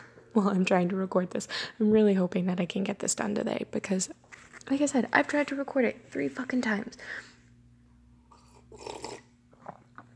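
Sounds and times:
faint steady hum: 0.0 - 10.1
speech: 0.4 - 7.3, 8.8 - 9.1
slurping sip of coffee: 8.3 - 9.8
soft mouth and swallowing sounds: 8.4 - 9.8.

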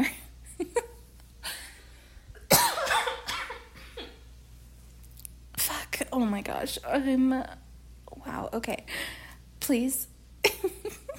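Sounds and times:
person coughing harshly: 2.5 - 4.2
speech: 6.2 - 7.6, 8.2 - 10.8.

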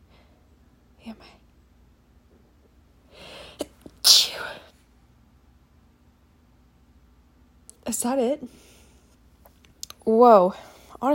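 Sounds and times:
speech: 1.0 - 1.4, 7.9 - 8.7, 10.1 - 11.1
single loud sneeze: 3.3 - 4.7.

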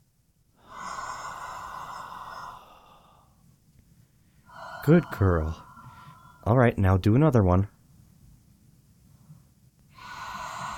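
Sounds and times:
long exhale after a held breath: 0.6 - 3.4, 4.4 - 6.4, 9.9 - 10.7
speech: 4.8 - 5.7, 6.4 - 7.8.

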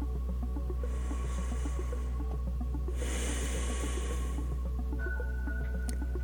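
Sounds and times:
steady low hum: 0.0 - 6.2
slow deliberate breathing in and out: 0.7 - 5.1.

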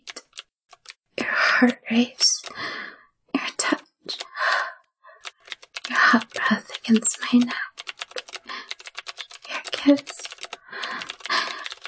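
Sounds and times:
rapid typing on a computer keyboard: 0.0 - 1.0, 5.2 - 11.8
speech: 1.6 - 2.7, 6.9 - 7.6.

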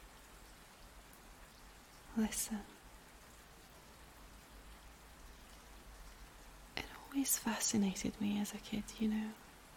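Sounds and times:
gentle rain pattering against windows: 0.0 - 9.7
person whispering: 2.1 - 2.8, 6.8 - 9.4
speech: 2.2 - 2.7, 7.1 - 9.4.

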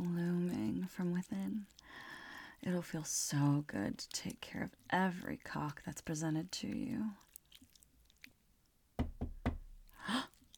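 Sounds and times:
speech: 0.9 - 7.2
quick solid knocks on a wall: 9.0 - 9.9.

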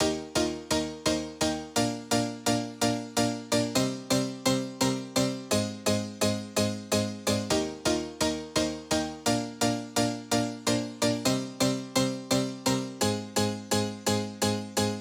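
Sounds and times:
rave piano at 128 BPM: 0.0 - 14.9.

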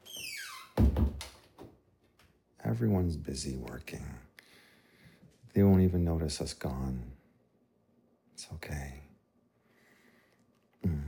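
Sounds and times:
creaking door hinge: 0.0 - 0.9
heavy door closing with a thud: 0.2 - 1.3
speech: 2.8 - 4.3, 5.6 - 7.2, 8.4 - 9.0.

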